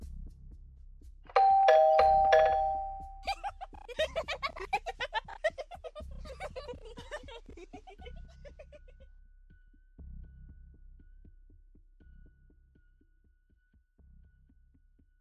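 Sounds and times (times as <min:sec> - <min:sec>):
doorbell chiming at an apartment door: 0:01.3 - 0:03.2
laughter: 0:03.2 - 0:08.8.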